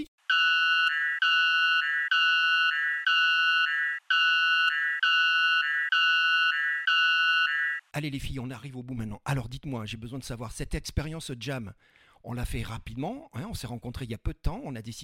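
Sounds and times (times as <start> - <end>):
personal safety alarm blaring two-tone electronic tone: 0.3 - 7.9
speech: 7.9 - 15.0.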